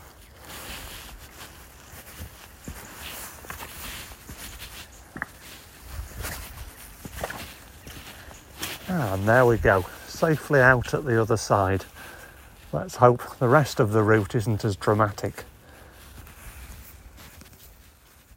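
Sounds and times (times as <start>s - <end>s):
footsteps walking through a muddy section of a countryside walk: 0.0s - 18.3s
speech: 8.9s - 11.9s, 12.7s - 15.5s.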